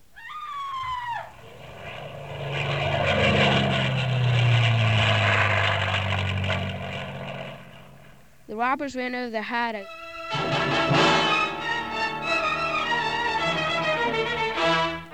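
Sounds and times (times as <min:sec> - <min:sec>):
high descending whistle of airplane dive-bombing effect: 0:00.1 - 0:06.4, 0:09.9 - 0:15.1
airplane propeller roar and rumbling engine drone: 0:00.7 - 0:08.5, 0:09.9 - 0:15.1
speech: 0:08.6 - 0:10.0.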